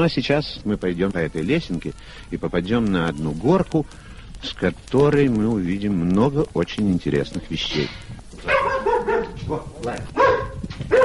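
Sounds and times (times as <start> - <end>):
speech: 0.0 - 8.5, 9.5 - 10.3
dog barking at visitors: 8.4 - 9.4, 10.2 - 11.0.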